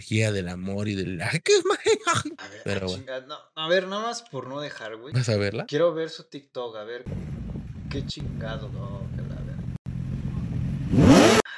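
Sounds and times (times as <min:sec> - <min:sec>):
speech: 0:00.0 - 0:09.2
laughter: 0:01.8 - 0:03.0
motorcycle engine revving: 0:07.1 - 0:11.5.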